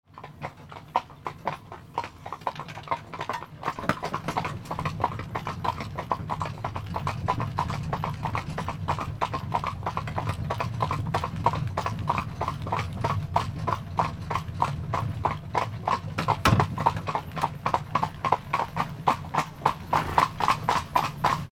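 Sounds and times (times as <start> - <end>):
horse carriage departing: 0.1 - 21.5.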